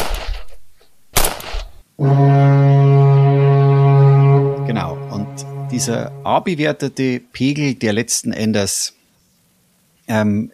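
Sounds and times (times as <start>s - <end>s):
speech: 2.0s - 2.5s, 5.7s - 9.0s, 10.1s - 10.5s
deep loud foghorn blast: 2.0s - 7.2s.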